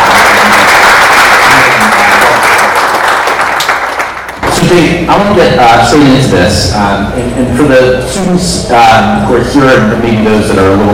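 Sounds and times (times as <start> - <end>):
audience applause at a college event: 0.0 - 4.4
speech: 4.7 - 10.9.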